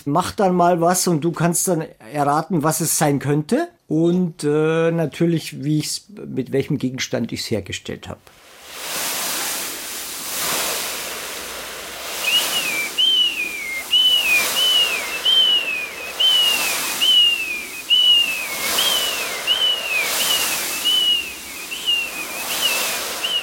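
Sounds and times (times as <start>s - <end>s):
speech: 0.0s - 8.5s
homemade foley imitation of waves breaking: 8.3s - 23.4s
high falling whistled chirps imitating gulls: 12.0s - 23.4s.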